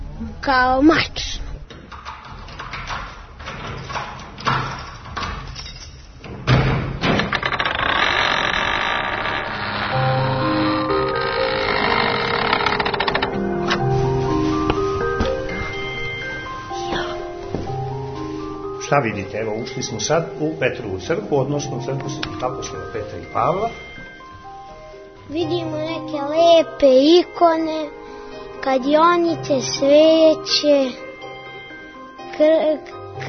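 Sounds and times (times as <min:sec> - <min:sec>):
speech: 0:00.2 - 0:01.4, 0:18.9 - 0:23.8, 0:25.3 - 0:28.0, 0:28.6 - 0:31.0, 0:32.4 - 0:33.2
heavy church door swinging open with groaning creak: 0:01.5 - 0:17.8
large sword-like key rattling and clicking in church door lock: 0:01.8 - 0:06.2.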